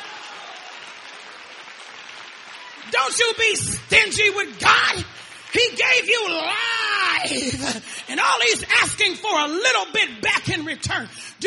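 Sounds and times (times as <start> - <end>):
church congregation clapping hands during a service: 0.0 - 8.0
speech: 2.8 - 11.4.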